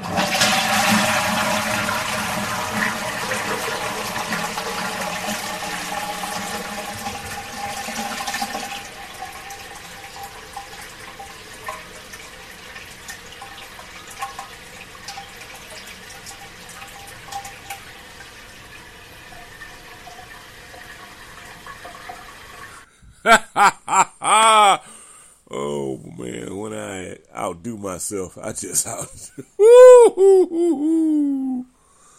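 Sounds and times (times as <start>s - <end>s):
toilet flushing: 0.0s - 22.9s
toilet refilling trickle and gurgle: 0.0s - 22.9s
laughter: 23.3s - 24.9s, 28.7s - 31.6s
speech: 28.0s - 31.4s.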